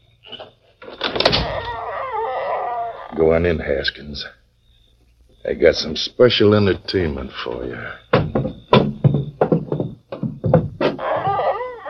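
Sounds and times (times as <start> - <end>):
door scraping with wavering hinge creak as it swings: 0.2 - 3.3, 7.5 - 11.8
speech: 3.1 - 4.4, 5.4 - 8.3.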